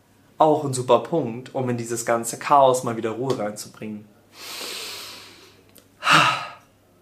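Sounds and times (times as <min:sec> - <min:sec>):
speech: 0:00.4 - 0:04.7
deep deliberate breath in and out: 0:04.3 - 0:06.7.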